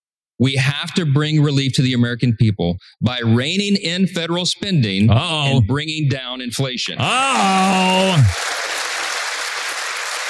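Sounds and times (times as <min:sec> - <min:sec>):
speech: 0:00.4 - 0:08.6
large crowd applauding in a US legislative chamber: 0:07.3 - 0:10.2.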